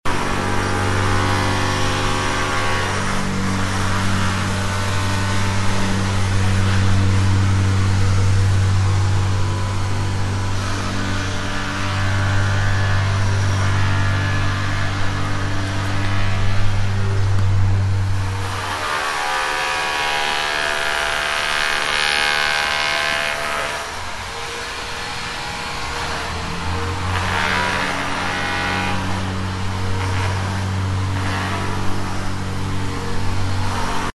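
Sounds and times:
construction and repair sounds: 0:00.1 - 0:34.1.

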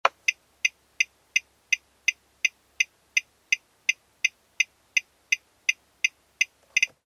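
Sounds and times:
car turn signal ticking: 0:00.0 - 0:07.0.

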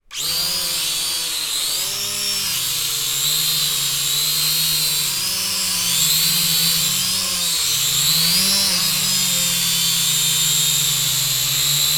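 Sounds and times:
quadcopter drone: 0:00.1 - 0:11.9.

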